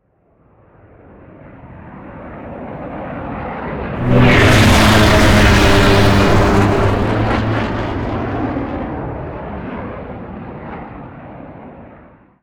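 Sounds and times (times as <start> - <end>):
flying vehicle passing by: 4.0 - 9.2.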